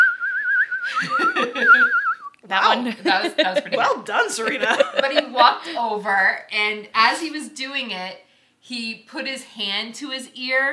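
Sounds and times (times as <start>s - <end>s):
person whistling a tune in a park: 0.0s - 2.4s
laughter: 0.9s - 2.0s, 2.8s - 5.8s
speech: 2.5s - 10.7s.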